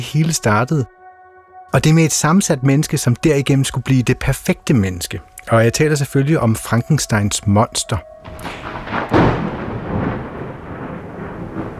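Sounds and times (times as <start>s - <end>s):
speech: 0.0s - 1.0s, 1.7s - 9.3s
thunder crack and rumble from lightning strikes: 5.8s - 11.7s.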